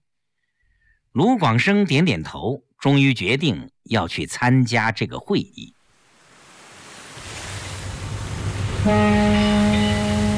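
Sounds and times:
speech: 1.2 - 5.8, 8.8 - 9.5
waves and water rumbling: 5.7 - 10.3
passenger ship whistle blowing while docking at a pier in Hong Kong: 8.8 - 10.3.

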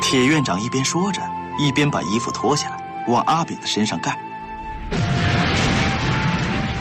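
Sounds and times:
speech: 0.1 - 4.2
distant explosion: 4.7 - 6.7.

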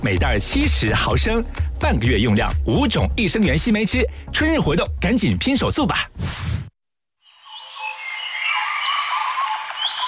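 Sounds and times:
speech: 0.0 - 6.4
birds chirping and whistling: 7.4 - 10.0.

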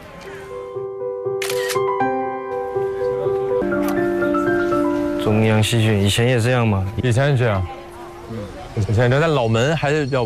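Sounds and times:
music: 0.4 - 8.6
camera shutter clicks taking a photo outside a drama school: 1.4 - 1.9
speech: 5.2 - 10.2.

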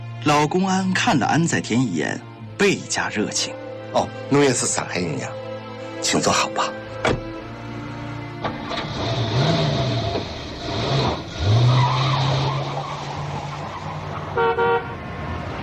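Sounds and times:
speech: 0.2 - 5.4, 6.0 - 7.2
jeep engine starting and driving off: 6.7 - 15.6
jeep horn double honk: 14.3 - 15.0.

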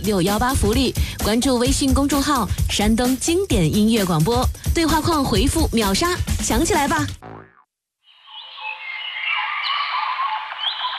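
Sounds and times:
speech: 0.0 - 7.3
dense chorus of birdsong: 8.1 - 10.9.

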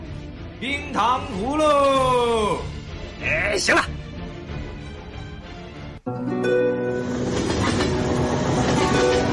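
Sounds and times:
speech: 0.6 - 2.7, 3.2 - 4.0
train rumbling at a railway station: 6.9 - 9.3.

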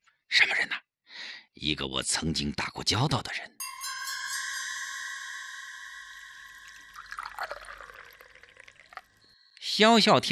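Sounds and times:
speech: 0.3 - 0.7, 1.6 - 3.6, 9.8 - 10.3
water pouring into a cup: 5.8 - 9.3.

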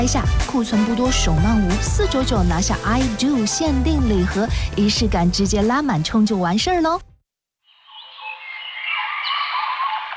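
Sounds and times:
speech: 0.0 - 7.1
dense chorus of birds chirping and singing: 7.9 - 10.1.

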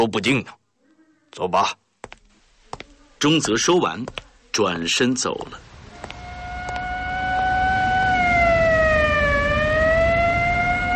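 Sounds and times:
speech: 0.0 - 0.6, 1.3 - 1.8, 3.2 - 5.7
low rumble of traffic: 4.1 - 10.9
police and military vehicle sirens wailing: 6.0 - 10.9.

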